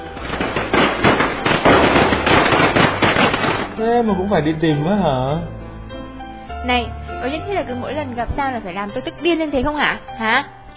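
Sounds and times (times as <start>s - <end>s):
rapid string of firecrackers exploding: 0.0s - 3.9s
speech: 3.9s - 5.6s, 6.6s - 10.7s.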